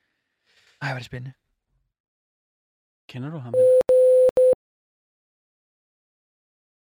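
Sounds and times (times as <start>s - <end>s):
speech: 0.8s - 1.4s, 3.1s - 3.8s
telephone line tone: 3.6s - 4.6s.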